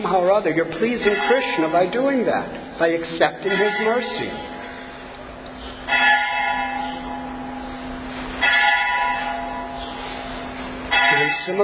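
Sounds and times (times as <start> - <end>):
speech: 0.1 - 4.5, 11.4 - 11.6
bell ringing: 0.9 - 2.2, 3.4 - 5.0, 5.9 - 11.6.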